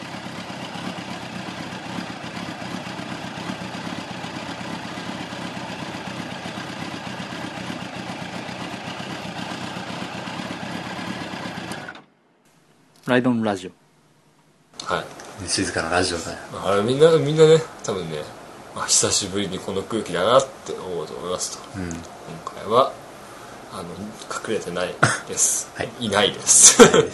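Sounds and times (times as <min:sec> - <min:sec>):
motorcycle engine idling with a fast mechanical rattle: 0:00.0 - 0:12.2
speech: 0:13.1 - 0:13.8, 0:14.9 - 0:23.0, 0:23.7 - 0:27.1
laughter: 0:25.0 - 0:25.4, 0:26.5 - 0:27.1.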